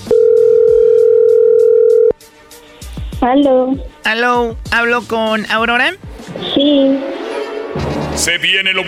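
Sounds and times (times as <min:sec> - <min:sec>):
telephone call tone: 0:00.1 - 0:02.1
speech: 0:03.3 - 0:07.1, 0:08.1 - 0:08.8.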